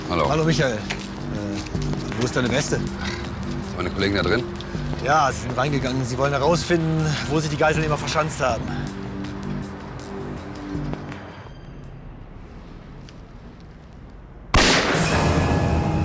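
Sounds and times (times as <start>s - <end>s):
speech: 0.1s - 8.9s
loud gunshot: 14.5s - 15.8s.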